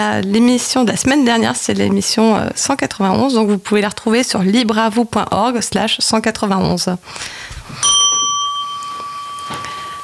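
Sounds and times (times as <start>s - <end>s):
speech: 0.0s - 8.0s
electronic doorbell chime: 7.8s - 10.0s.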